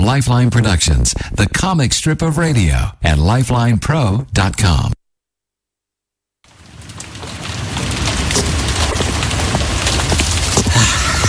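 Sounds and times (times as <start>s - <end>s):
speech: 0.1s - 5.0s
deep low rumble of thunder: 6.5s - 11.2s
steady dense rainfall: 6.5s - 11.2s.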